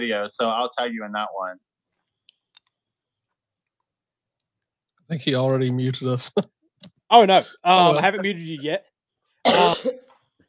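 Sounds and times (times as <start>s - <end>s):
speech: 0.0s - 1.7s, 5.1s - 10.0s
person coughing with a throaty rasp: 9.5s - 10.1s.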